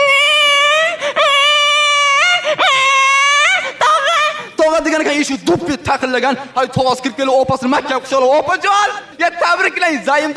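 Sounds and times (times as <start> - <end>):
baby crying: 0.0 - 4.6
speech: 5.3 - 10.3.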